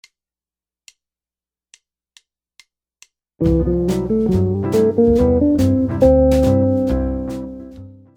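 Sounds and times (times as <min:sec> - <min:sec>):
minor jazz guitar lick: 0:03.4 - 0:08.0.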